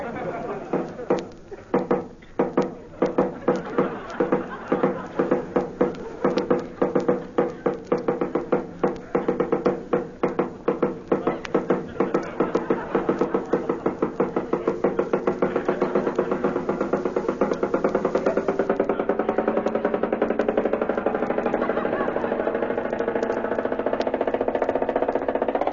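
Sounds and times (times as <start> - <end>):
laughter: 0.0 - 8.0, 11.0 - 24.8
faint murmuring voices: 0.0 - 25.6
rapid insistent knocking on a door: 0.7 - 20.9.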